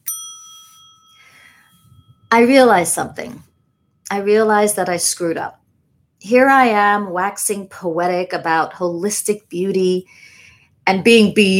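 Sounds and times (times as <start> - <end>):
bell ding: 0.0 - 3.2
speech: 2.3 - 3.5, 4.1 - 5.6, 6.2 - 10.3, 10.9 - 11.5.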